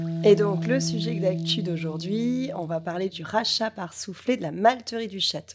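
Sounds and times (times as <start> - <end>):
podcast musical jingle with distorted chord stabs over a descending bass line: 0.1 - 3.6
speech: 0.3 - 5.5.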